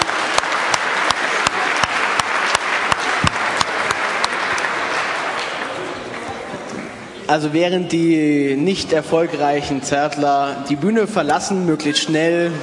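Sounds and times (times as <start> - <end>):
audience applause in a stage quiz: 0.0 - 6.3
speech: 7.3 - 12.6.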